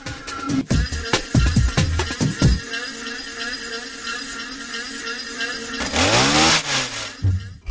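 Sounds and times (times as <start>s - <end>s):
leaf blower droning: 1.0s - 7.5s
weed whacker droning: 2.6s - 7.6s.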